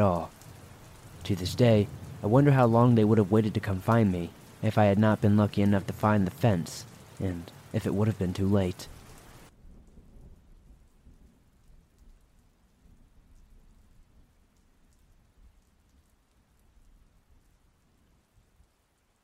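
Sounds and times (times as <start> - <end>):
speech: 0.0 - 0.3, 1.2 - 8.9
rumble of thunder: 0.0 - 5.9, 9.5 - 12.2
heavy rain: 0.0 - 19.2.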